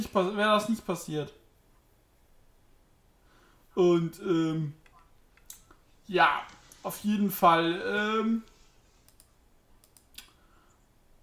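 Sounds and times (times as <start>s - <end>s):
speech: 0.0s - 1.4s, 3.8s - 4.8s, 6.1s - 8.5s
low hum: 0.0s - 11.2s
computer mouse or keyboard clicks: 9.0s - 10.8s.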